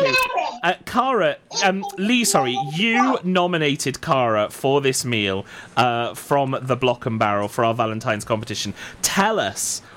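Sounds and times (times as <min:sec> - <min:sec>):
children chattering: 0:00.0 - 0:00.6, 0:01.5 - 0:03.2
adult speaking in hesitant bursts: 0:00.0 - 0:09.9
speech: 0:00.6 - 0:09.9.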